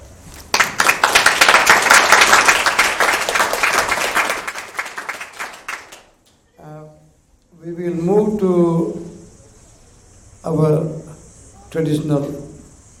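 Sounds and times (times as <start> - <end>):
audience applause: 0.5 - 6.2
speech: 7.7 - 9.0, 10.5 - 10.9, 11.8 - 12.4.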